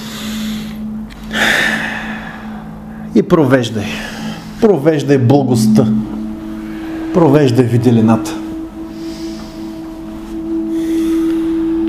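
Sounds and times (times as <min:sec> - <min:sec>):
deep breath during a guided meditation exercise: 0:00.0 - 0:03.1, 0:03.8 - 0:04.6, 0:08.6 - 0:11.8
low hum: 0:00.0 - 0:11.8
speech: 0:03.2 - 0:06.2, 0:07.1 - 0:08.4.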